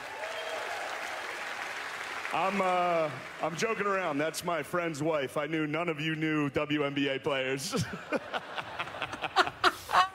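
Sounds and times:
roomful of people applauding: 0.0 - 4.2
speech: 2.3 - 8.6
laughter: 7.6 - 10.1.

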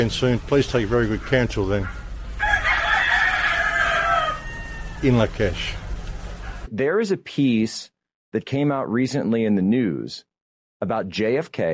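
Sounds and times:
speech: 0.0 - 2.0, 5.0 - 5.8, 6.7 - 11.7
rooster crowing: 1.8 - 6.7.

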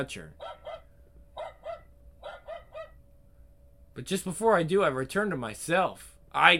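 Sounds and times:
speech: 0.0 - 0.5, 4.0 - 6.5
little dog yapping: 0.4 - 3.0.

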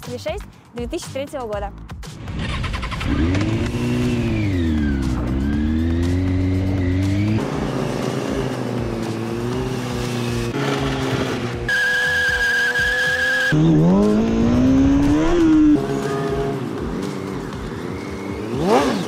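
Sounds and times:
pink Kawasaki 636 motorcycle engine revving while drifting: 2.2 - 19.0
motorcycle tire squeal during drifting: 10.6 - 13.8.

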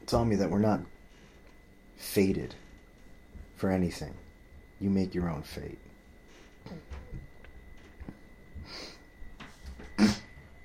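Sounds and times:
speech: 0.1 - 1.0, 2.0 - 2.6, 3.6 - 4.2, 4.8 - 5.9, 6.6 - 7.2
quiet breathing: 1.0 - 1.6, 6.2 - 7.0, 8.6 - 9.2
person snorting: 10.0 - 10.3
person clearing throat: 10.0 - 10.4.

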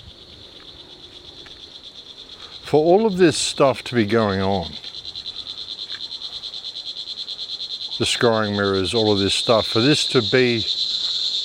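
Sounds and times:
cicadas chirping: 0.0 - 11.4
speech: 2.7 - 4.9, 8.0 - 10.8.

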